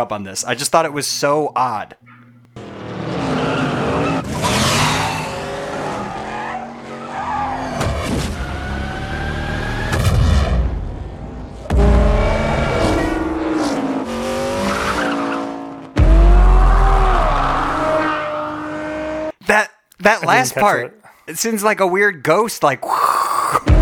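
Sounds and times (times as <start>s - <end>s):
speech: 0.0s - 2.1s, 20.0s - 23.7s
car tires squealing and skidding: 2.6s - 10.5s, 12.0s - 15.9s, 16.6s - 19.2s.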